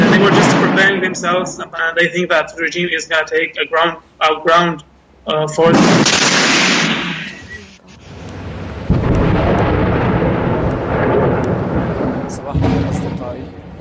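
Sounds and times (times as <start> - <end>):
heavy artillery shells exploding in a bombardment: 0.0 - 1.6, 5.6 - 8.2, 8.9 - 13.7
speech: 1.1 - 6.5.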